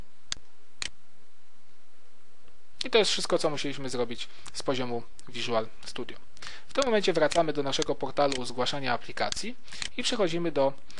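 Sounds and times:
speech: 2.9 - 10.9
computer mouse clicks while working in Visual Studio: 6.7 - 8.5.

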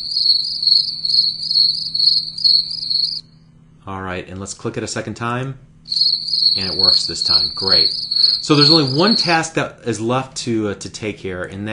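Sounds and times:
speech: 0.0 - 0.7, 2.6 - 3.0, 3.9 - 5.7, 6.6 - 11.7
cricket chirping sound effect: 0.0 - 3.3, 5.9 - 9.4
faint low hum: 0.0 - 11.7.

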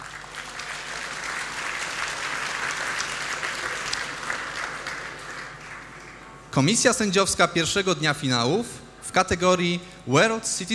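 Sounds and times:
audience applause: 0.0 - 6.3
speech: 6.6 - 10.7.

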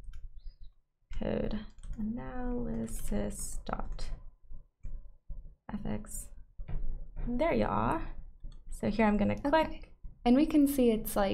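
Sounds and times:
typing on a computer keyboard: 1.1 - 3.2
speech: 1.2 - 4.2, 5.9 - 6.3, 7.2 - 8.2, 8.8 - 11.3.

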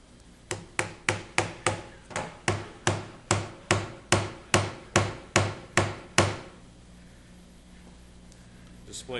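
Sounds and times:
nail hammered in with a smartphone: 0.5 - 6.6.

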